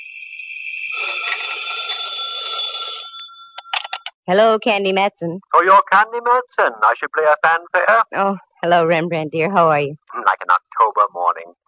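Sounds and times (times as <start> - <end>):
telephone bell ringing: 0.8 - 4.1
speech: 4.3 - 11.6.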